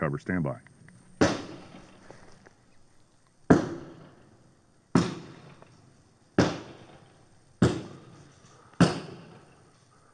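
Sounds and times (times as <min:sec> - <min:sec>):
gunshots from a long gun fired out through a vehicle's rear window: 0:01.2 - 0:02.0, 0:03.5 - 0:04.3, 0:04.9 - 0:05.8, 0:06.4 - 0:09.7.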